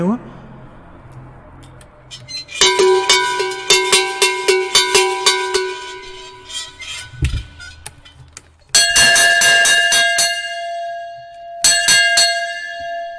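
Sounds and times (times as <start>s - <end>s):
sheet-metal cowbell clanking: 2.3s - 7.2s, 8.7s - 13.1s
cast bell-metal cowbell ringing: 2.6s - 6.5s, 8.8s - 13.1s.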